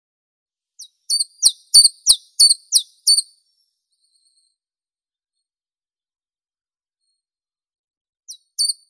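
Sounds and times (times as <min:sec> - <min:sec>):
chiffchaff Phylloscopus collybita singing: 0:01.1 - 0:03.2.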